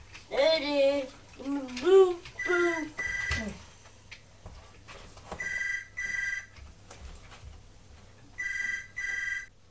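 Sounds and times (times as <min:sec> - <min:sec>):
faint noise: 0:00.0 - 0:09.6
telephone ringing with electronic trills: 0:02.4 - 0:03.5, 0:05.4 - 0:06.6, 0:08.4 - 0:09.6.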